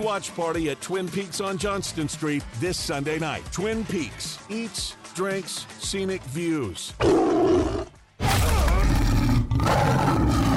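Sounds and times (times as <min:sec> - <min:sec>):
speech: 0:00.0 - 0:07.8
tiger roaring: 0:07.0 - 0:10.5.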